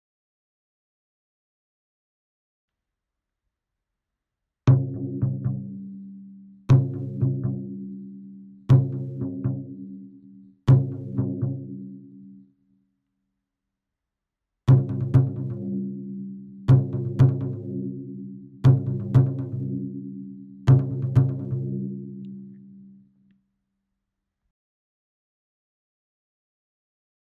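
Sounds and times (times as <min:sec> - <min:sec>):
taiko drum bass: 0:06.7 - 0:07.8, 0:08.7 - 0:09.9, 0:10.7 - 0:11.8, 0:14.7 - 0:15.9, 0:16.7 - 0:18.0, 0:18.6 - 0:19.9, 0:20.7 - 0:21.9.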